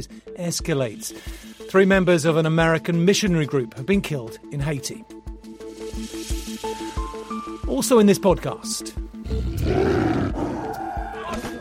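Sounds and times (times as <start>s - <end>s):
speech: 0.0s - 5.1s, 7.8s - 10.3s
tiger roaring in a bathroom: 9.2s - 11.2s.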